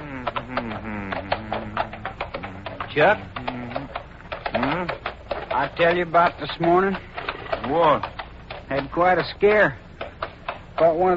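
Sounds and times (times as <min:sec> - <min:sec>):
continuous low tonal hum: 0:00.0 - 0:05.2
horses' hooves walking down a slope: 0:00.0 - 0:11.1
speech: 0:03.0 - 0:03.4, 0:05.6 - 0:08.1, 0:08.7 - 0:09.8, 0:10.8 - 0:11.1.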